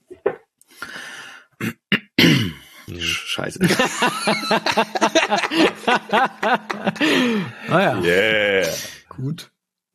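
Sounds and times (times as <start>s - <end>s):
person clearing throat: 1.6s - 2.7s
speech: 3.4s - 9.5s
laughter: 3.6s - 8.8s.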